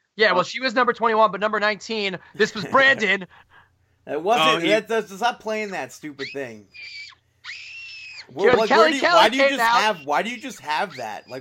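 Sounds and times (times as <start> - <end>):
speech: 0.2 - 7.6, 8.3 - 11.4
laughter: 2.4 - 3.2, 8.4 - 11.4
little girl screaming: 6.8 - 9.8.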